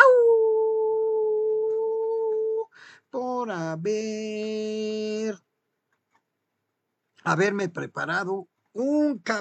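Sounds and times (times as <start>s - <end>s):
person imitating a wolf howling: 0.0s - 2.7s
speech: 3.1s - 5.5s, 7.2s - 9.4s.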